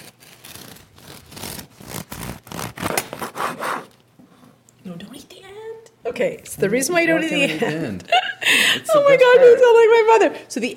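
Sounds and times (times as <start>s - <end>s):
knife cutting into a loaf of bread: 0.0s - 4.0s
speech: 6.2s - 10.7s.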